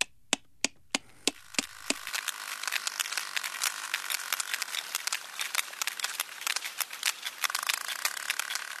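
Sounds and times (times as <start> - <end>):
sperm whale clicks recorded underwater by hydrophone: 0.0 - 8.7.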